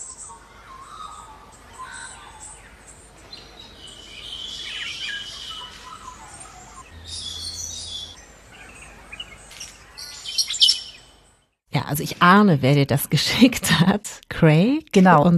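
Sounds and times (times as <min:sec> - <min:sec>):
dawn chorus of many birds on Kangaroo Island Australia: 0:00.0 - 0:11.4
speech: 0:11.9 - 0:15.3.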